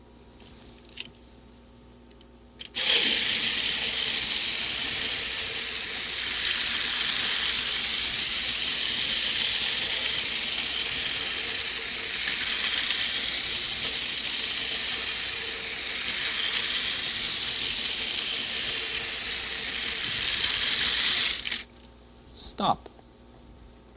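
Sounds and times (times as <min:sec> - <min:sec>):
electric toy train with coal car, flat car and caboose running fast: 0:02.6 - 0:21.7.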